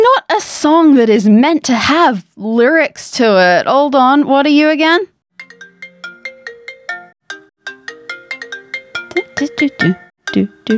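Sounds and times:
speech: 0.6 - 5.1, 9.4 - 10.7
melodic electronic phone ringtone: 5.4 - 10.7.

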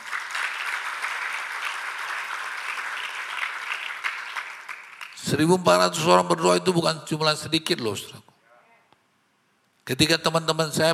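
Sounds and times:
audience applause: 0.0 - 5.2
speech: 5.2 - 8.3, 9.9 - 10.9.

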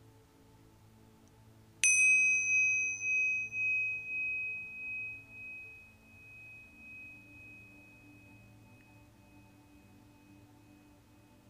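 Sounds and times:
small meditation bell struck and ringing out: 1.8 - 10.9.

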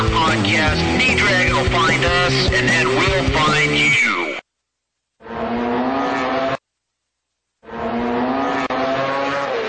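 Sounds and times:
speech: 0.1 - 4.4
240-horsepower road-racing motorcycle engine screaming at high revs: 5.2 - 6.6, 7.6 - 9.6.

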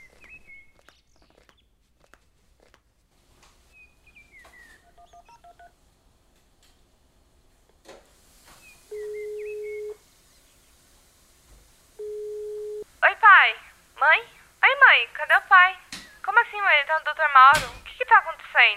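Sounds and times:
faint hiss: 3.0 - 18.7
telephone dialing tones while placing a call: 8.9 - 10.0, 12.0 - 12.8
speech: 17.2 - 17.8.

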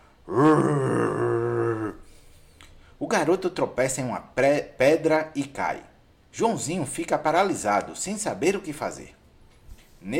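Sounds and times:
large running creatures bellowing: 0.3 - 2.0
speech: 3.1 - 9.2.

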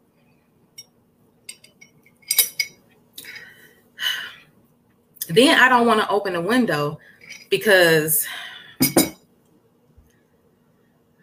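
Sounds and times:
drinking glass clinking as it is picked up and set down: 1.5 - 2.8, 8.8 - 9.2
speech: 5.3 - 8.4.

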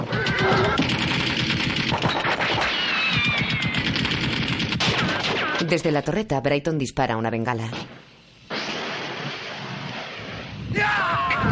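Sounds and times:
machine-gun fire from an armoured car raking soldiers in the desert: 0.0 - 5.6, 8.5 - 10.5
horse whinnying: 2.7 - 3.9
speech: 5.7 - 8.0.

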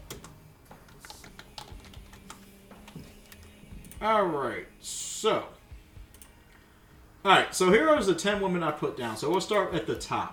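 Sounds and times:
typing on a computer keyboard while writing notes: 0.0 - 4.0
speech: 4.0 - 5.6, 7.2 - 10.3.

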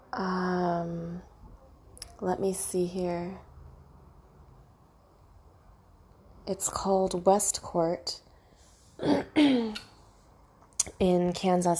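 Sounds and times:
speech: 0.1 - 1.3, 2.2 - 3.5, 6.4 - 8.2, 9.0 - 9.9, 11.0 - 11.7
person clearing throat: 9.0 - 9.8.

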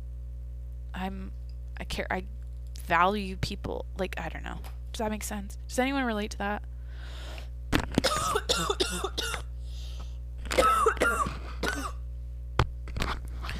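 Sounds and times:
faint steady electrical hum: 0.0 - 13.5
speech: 1.0 - 7.3, 8.3 - 9.4
person giving harsh dry coughs: 8.0 - 9.5, 10.5 - 12.0.

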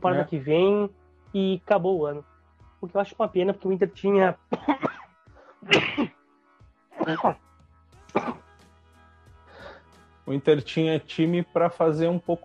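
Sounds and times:
speech: 0.0 - 4.8, 5.6 - 6.2, 7.1 - 7.5, 10.3 - 12.4
harsh explosive coughs: 4.5 - 6.2, 7.0 - 7.4, 8.1 - 8.5.

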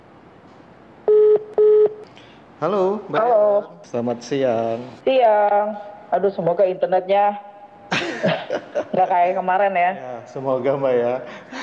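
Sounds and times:
faint hiss: 0.0 - 11.6
steady electronic ringback tones from a phone line: 1.1 - 2.0
speech: 2.6 - 7.5, 9.0 - 11.6
laughter: 7.9 - 9.2.

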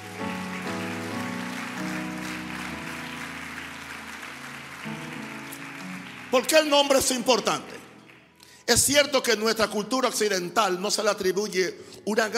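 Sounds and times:
audience applauding: 0.0 - 8.6
speech: 6.3 - 7.8, 8.7 - 12.3.

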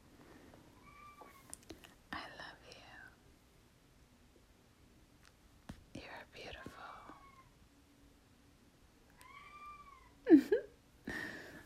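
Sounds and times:
faint steady tone: 0.0 - 11.6
cat meowing: 0.8 - 1.6, 7.2 - 7.6, 9.1 - 10.2.

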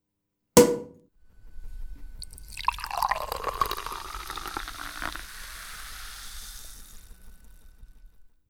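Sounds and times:
sharp tap: 0.6 - 1.0
drink pouring into a glass: 2.2 - 7.5
fizzing hiss of a poured drink: 2.2 - 8.3.

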